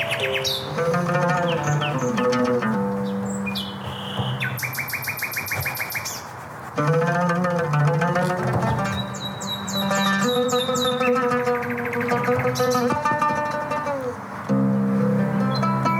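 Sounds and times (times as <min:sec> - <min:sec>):
nightingale chirps and trills: 0:00.0 - 0:02.3, 0:03.0 - 0:06.3, 0:09.0 - 0:12.9
string instrument: 0:00.0 - 0:15.9.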